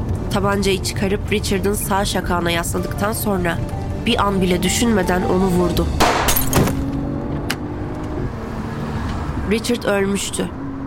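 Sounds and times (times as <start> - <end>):
speech: 0.4 - 6.2, 9.5 - 10.6
car engine roaring as it accelerates hard: 6.7 - 10.8.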